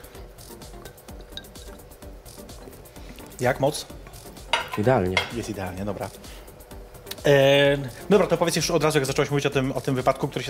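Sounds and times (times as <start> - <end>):
glasses clinking during a toast: 0.6 - 1.8, 4.4 - 5.5
speech: 3.4 - 4.0, 4.8 - 6.2, 7.2 - 10.4.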